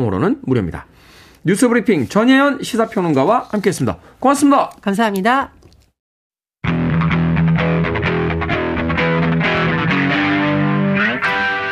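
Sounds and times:
speech: 0.0s - 5.6s
heavily distorted electric guitar riff: 6.6s - 11.6s.

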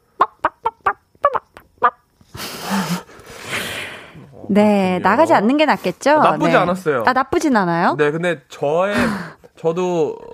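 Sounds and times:
person doing a vocal impression of chicken clucking: 0.1s - 2.0s
speech: 4.5s - 10.3s.

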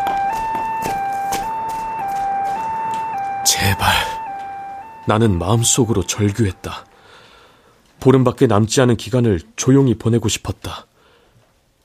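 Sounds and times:
ambulance and police car sirens at an apartment complex: 0.0s - 7.1s
speech: 3.4s - 4.2s, 5.1s - 6.9s, 8.0s - 10.9s.

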